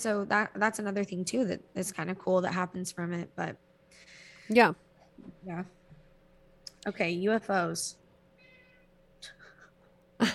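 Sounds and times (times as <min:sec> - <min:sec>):
speech: 0:00.0 - 0:05.8, 0:06.8 - 0:08.0
cat meowing: 0:08.4 - 0:09.0.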